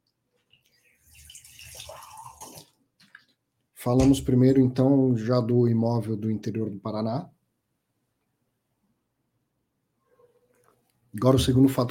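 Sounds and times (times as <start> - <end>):
water pouring into a glass: 0.5 - 2.8
speech: 3.8 - 7.4, 11.2 - 11.8.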